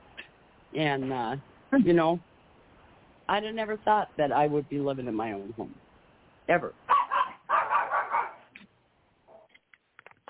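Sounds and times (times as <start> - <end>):
speech: 0.7 - 2.3, 3.3 - 5.8, 6.5 - 6.8
dogs barking: 6.9 - 8.5, 9.3 - 9.5.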